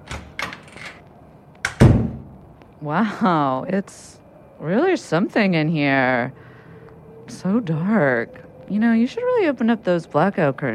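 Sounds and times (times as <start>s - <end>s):
banging on a window: 1.6s - 2.4s
speech: 2.8s - 6.4s, 7.3s - 10.7s.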